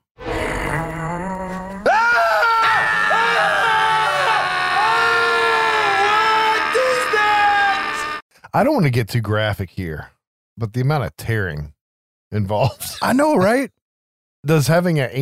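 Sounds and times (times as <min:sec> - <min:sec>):
man groaning: 0:00.5 - 0:08.2
man screaming in pain on a floor: 0:01.8 - 0:08.2
speech: 0:08.5 - 0:13.8, 0:14.4 - 0:15.2.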